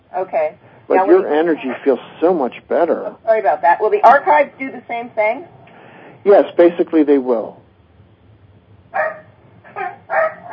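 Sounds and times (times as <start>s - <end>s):
quiet low hum: 0.0s - 10.5s
speech: 0.1s - 5.6s, 6.2s - 7.6s
dog barking: 8.9s - 10.5s.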